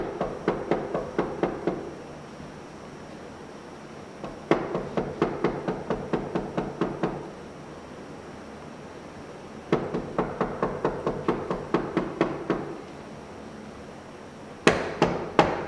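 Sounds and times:
rapid knocking on a door: 0.0s - 1.9s, 4.2s - 7.2s, 9.7s - 12.8s, 14.7s - 15.6s.

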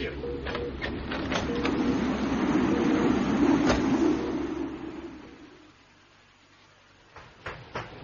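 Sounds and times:
blast of wind rushing through an opened door: 0.9s - 6.0s.

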